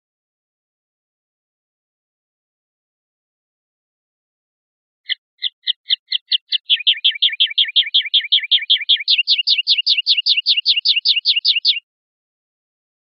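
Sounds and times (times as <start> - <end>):
European goldfinch song of steady repeated chirps: 5.1 - 11.8.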